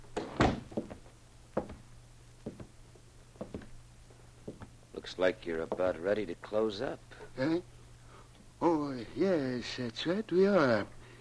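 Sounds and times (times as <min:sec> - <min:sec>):
faint steady hum: 0:00.0 - 0:11.1
bank door shutting with a solid thud: 0:00.2 - 0:00.9
speech: 0:05.1 - 0:07.8, 0:08.6 - 0:11.0.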